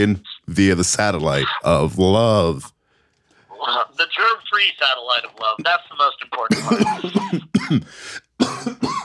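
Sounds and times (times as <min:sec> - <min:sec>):
speech: 0:00.0 - 0:02.8, 0:03.6 - 0:09.0
sick person coughing harshly: 0:06.5 - 0:09.0.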